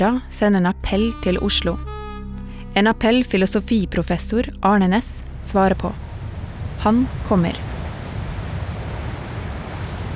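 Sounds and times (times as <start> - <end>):
speech: 0.0 - 1.9, 2.8 - 6.0, 6.8 - 7.7
steady wind roaring outdoors buffeting the microphone: 5.3 - 10.1.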